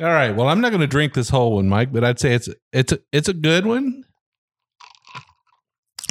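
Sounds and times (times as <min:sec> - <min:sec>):
speech: 0:00.0 - 0:04.1
ice cubes crunched between teeth: 0:04.8 - 0:06.1.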